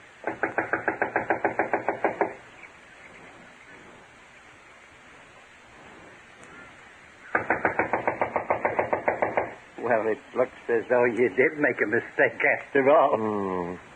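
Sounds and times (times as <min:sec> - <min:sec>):
steady hiss: 0:00.0 - 0:13.9
knocking on the wooden door of a run-down unoccupied house: 0:00.2 - 0:02.4, 0:07.3 - 0:09.6
speech: 0:09.9 - 0:13.9.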